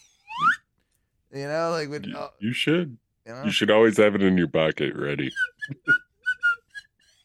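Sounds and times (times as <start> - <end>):
slide whistle toots: 0.0 - 0.7, 5.3 - 7.2
speech: 1.3 - 6.0.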